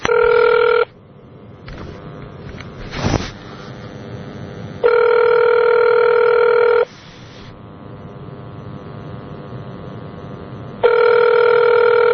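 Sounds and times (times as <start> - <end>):
telephone ringback tone of an outgoing call: 0.0 - 0.9, 4.8 - 6.9, 10.8 - 12.1.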